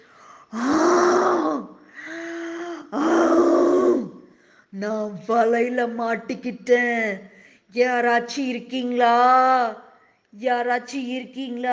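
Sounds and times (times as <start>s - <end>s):
voice imitating an angry lion's roar: 0.6s - 1.7s, 2.9s - 4.2s
speech: 4.8s - 11.7s.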